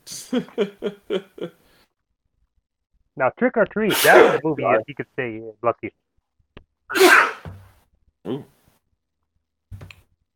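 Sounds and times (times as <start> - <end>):
speech: 0.3 - 1.6, 3.2 - 6.0, 6.9 - 7.6, 8.2 - 8.6
loud sneeze: 3.9 - 4.4, 6.9 - 7.5.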